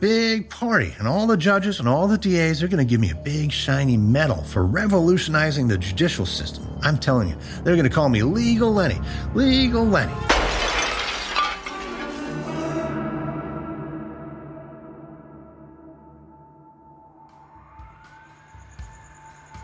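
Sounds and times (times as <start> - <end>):
speech: 0.0 - 10.4
faint siren: 2.3 - 8.4, 15.9 - 19.6
glass window shattering: 10.2 - 12.5.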